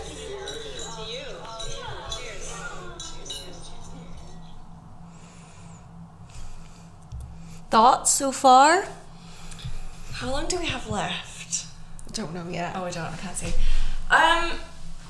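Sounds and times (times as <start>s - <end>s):
glasses clinking in a toast: 0.0s - 4.6s
people chatting and murmuring: 0.0s - 4.6s, 7.7s - 9.0s, 10.1s - 14.8s
steady low hum: 0.0s - 15.0s
speech: 7.7s - 9.0s, 10.2s - 11.6s, 12.2s - 14.6s.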